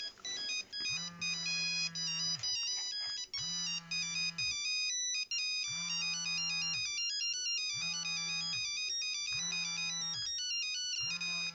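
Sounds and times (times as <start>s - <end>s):
Nokia 5510 ringtones: 0.0s - 11.5s.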